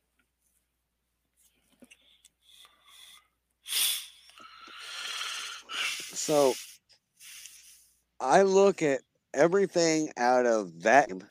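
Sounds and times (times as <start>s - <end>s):
person with sinus trouble sniffing: 2.4s - 8.0s
hissing exhale or sniffle: 2.6s - 7.9s
stifled sneeze of person with sinus trouble: 3.7s - 4.2s, 5.7s - 6.8s
speech: 6.3s - 6.6s, 8.2s - 11.3s.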